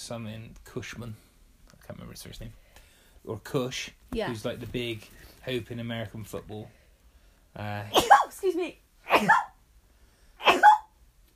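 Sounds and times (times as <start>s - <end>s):
speech: 0.1s - 1.3s, 1.9s - 2.6s, 3.2s - 6.8s, 7.6s - 9.5s
person sneezing: 7.9s - 8.4s, 9.0s - 9.6s, 10.4s - 10.9s.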